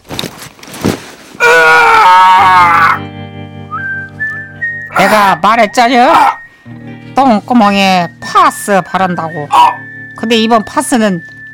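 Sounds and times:
soft rustling at dawn: 0.0s - 1.4s
loud sustained scream wavering in pitch: 1.4s - 3.1s, 6.0s - 6.5s
speech: 5.1s - 11.4s.

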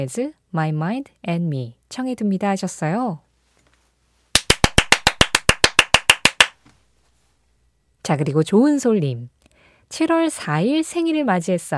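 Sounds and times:
speech: 0.0s - 3.2s, 8.0s - 11.7s
enthusiastic rapid hand clapping: 4.3s - 6.6s.

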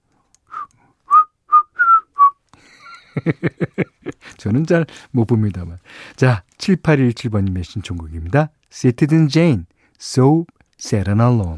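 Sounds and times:
person whistling a short melodic phrase: 0.5s - 2.4s
laughter: 2.6s - 4.6s
speech: 3.2s - 3.8s, 4.4s - 11.5s.

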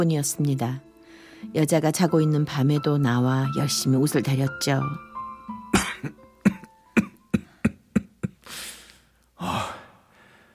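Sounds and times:
speech: 0.0s - 5.1s
man with a long-lasting cold coughing: 5.7s - 8.5s
raspy wheezing breaths: 7.4s - 10.5s.

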